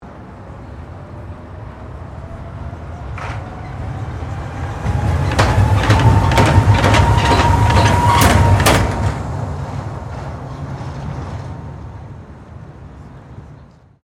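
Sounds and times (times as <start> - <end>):
Sydney monorail train passing: 0.0 - 14.0.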